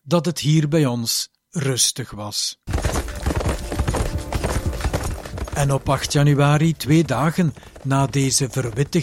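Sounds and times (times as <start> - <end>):
speech: 0.1 - 3.1, 5.6 - 9.0
hooves of two charging horses clip-clopping: 2.7 - 9.0.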